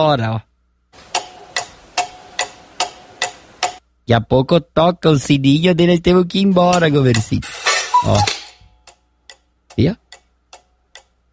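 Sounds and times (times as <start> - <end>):
speech: 0.0 - 1.1, 4.1 - 8.4, 9.8 - 10.0
faint steady hum: 0.0 - 11.3
clock ticking: 1.0 - 3.9, 6.6 - 11.3.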